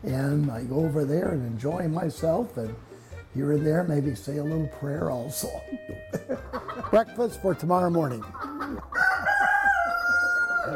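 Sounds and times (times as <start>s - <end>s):
speech: 0.0s - 8.9s
laughter: 5.6s - 7.2s
chickens clucking: 5.9s - 7.1s, 7.7s - 10.7s
rooster crowing: 8.9s - 10.7s.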